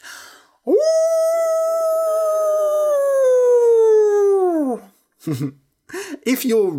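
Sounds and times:
person imitating a wolf howl: 0.6 - 5.0
speech: 5.3 - 5.6, 6.3 - 6.7.

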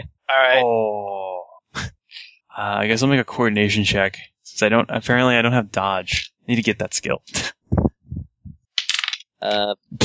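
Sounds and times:
speech: 0.3 - 1.2, 2.6 - 7.6, 9.4 - 10.0
two dice rolling across a hard tabletop: 8.8 - 9.3.

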